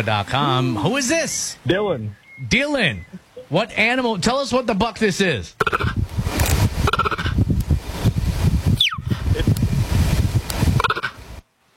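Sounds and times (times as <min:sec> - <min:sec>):
speech: 0:00.0 - 0:06.0
steady windy rustling outdoor background: 0:00.0 - 0:11.7
cheetah giving short high chirping calls: 0:02.1 - 0:03.5, 0:05.6 - 0:06.0, 0:06.9 - 0:07.4, 0:08.8 - 0:09.2.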